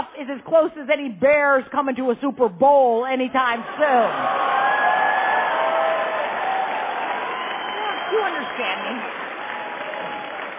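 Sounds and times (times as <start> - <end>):
speech: 0.2 - 4.5, 8.1 - 9.2
crowd applause: 3.6 - 10.5.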